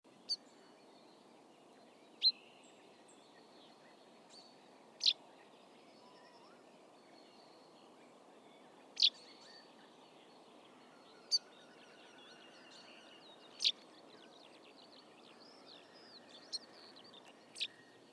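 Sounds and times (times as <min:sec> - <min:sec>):
steady low background hiss: 0:00.1 - 0:18.1
common chaffinch Fringilla coelebs calls: 0:05.0 - 0:05.2, 0:08.9 - 0:09.6, 0:11.2 - 0:14.0, 0:15.0 - 0:17.8.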